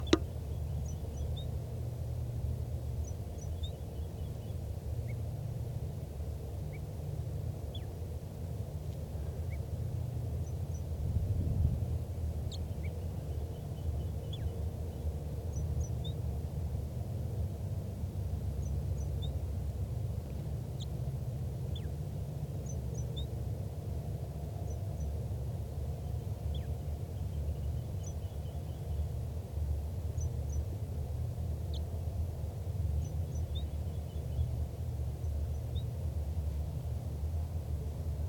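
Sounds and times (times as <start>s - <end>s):
wild bird singing softly: 0.0s - 1.8s, 2.5s - 8.1s, 9.3s - 11.0s, 12.3s - 16.4s, 18.4s - 19.6s, 20.6s - 23.5s, 24.6s - 25.2s, 26.0s - 36.6s
steady low rumble of noise: 0.0s - 38.2s.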